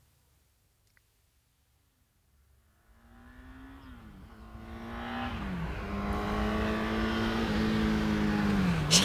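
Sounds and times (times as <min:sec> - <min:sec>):
car engine accelerating along a road with gear changes: 0:02.8 - 0:09.0.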